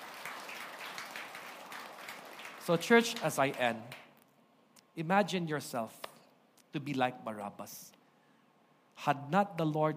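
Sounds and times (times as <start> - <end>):
congregation clapping in praise during a church sermon: 0.0 - 4.1
speech: 2.6 - 4.0, 5.0 - 6.0, 6.7 - 8.0, 9.0 - 9.9.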